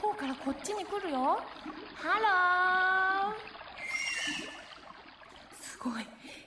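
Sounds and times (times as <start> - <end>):
constant watery bubbling underwater wash: 0.0 - 6.2
speech: 0.2 - 3.5, 5.8 - 6.4
dolphin whistling calls: 3.8 - 4.7.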